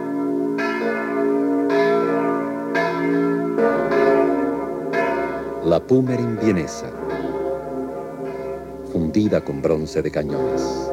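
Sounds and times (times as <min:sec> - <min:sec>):
large church bells ringing in a peal: 0:00.0 - 0:10.9
speech: 0:05.7 - 0:07.1, 0:09.0 - 0:10.9.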